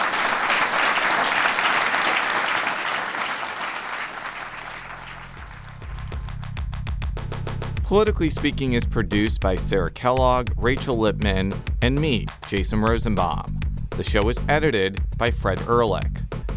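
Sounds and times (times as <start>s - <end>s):
audience applause: 0.0s - 6.5s
rhythmic music with a bass line and drum beats: 5.2s - 16.5s
speech: 7.9s - 16.2s.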